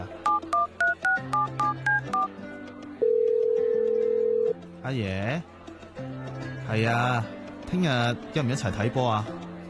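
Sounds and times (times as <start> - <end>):
telephone keypad beeps dialing a number: 0.2 - 2.3
telephone dial or ringing tone: 3.0 - 4.6
speech: 4.9 - 9.4.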